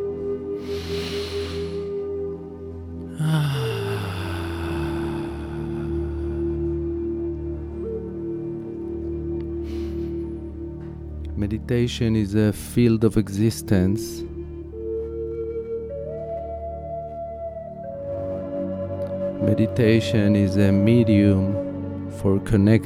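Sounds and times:
sustained musical drone: 0.0s - 22.8s
deep breath in and out during a guided meditation: 0.5s - 2.1s, 3.1s - 6.9s, 9.6s - 10.5s
speech: 11.4s - 14.3s, 19.6s - 21.6s, 22.2s - 22.8s.

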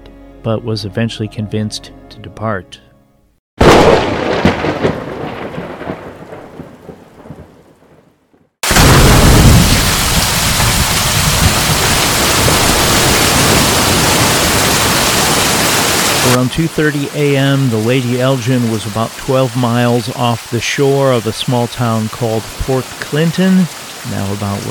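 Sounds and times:
speech: 0.4s - 2.8s, 16.6s - 24.6s
heavy rain pouring down: 3.6s - 8.0s, 8.6s - 24.6s
loud thunder crack rumbling: 3.6s - 8.0s, 8.6s - 16.9s.

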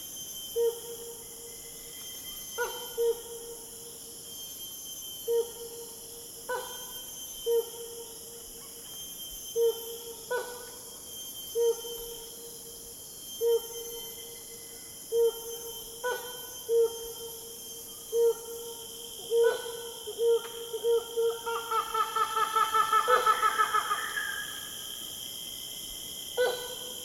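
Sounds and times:
buzzing insects on Borneo: 0.0s - 27.0s
helmeted hornbills calling on Borneo: 20.2s - 24.6s.

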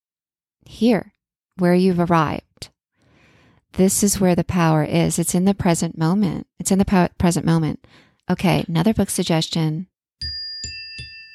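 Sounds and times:
speech: 0.6s - 2.7s, 3.7s - 10.3s
small bell ringing: 10.2s - 11.3s.

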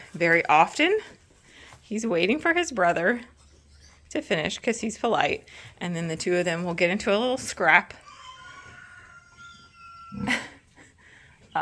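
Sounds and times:
speech: 0.1s - 1.2s, 1.9s - 3.3s, 4.1s - 8.0s, 10.1s - 10.5s
young rooster attempting to crow: 8.0s - 10.4s.

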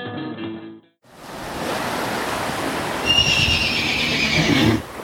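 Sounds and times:
ocean surf roaring at a river delta: 1.1s - 5.0s
white horse screaming and whinnying while struggling against a river current: 3.1s - 4.9s.

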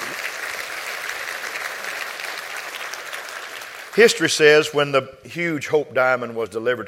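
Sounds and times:
audience applauding: 0.0s - 4.7s
speech: 4.0s - 6.8s.

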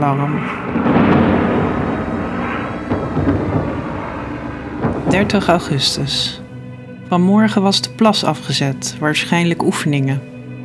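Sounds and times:
speech: 0.0s - 1.4s, 3.2s - 4.0s, 5.0s - 6.4s, 7.1s - 10.3s
rain hissing in a heavy thunderstorm: 0.0s - 6.8s
deep rolling thunder in a heavy evening thunderstorm: 0.0s - 7.2s.

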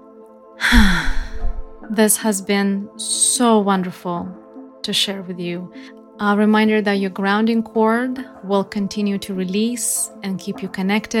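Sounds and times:
deep breath during a guided meditation: 0.6s - 1.8s
speech: 1.9s - 11.1s.

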